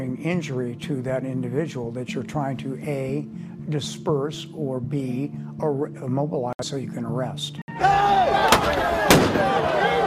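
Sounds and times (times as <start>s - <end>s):
speech: 0.2s - 7.6s
crowd noise: 7.7s - 10.0s
raised voices: 7.7s - 10.0s
loud blasts from a crowd-control munition: 8.5s - 9.6s.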